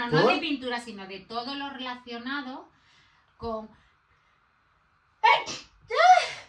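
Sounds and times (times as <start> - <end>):
speech: 0.1 - 2.8, 3.4 - 3.8
sneeze: 5.3 - 6.4.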